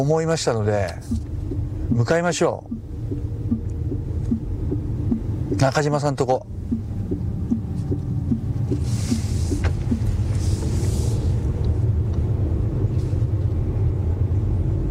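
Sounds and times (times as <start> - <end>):
speech: 0.0 - 1.2, 1.9 - 3.2, 5.5 - 6.5
car engine rumble heard from inside a car on a mountain road: 0.0 - 14.8
road noise from inside a car: 0.0 - 14.8
faint rhythmic ticking inside a car: 0.4 - 10.3
tires hissing on a road wet from rain: 8.7 - 11.6.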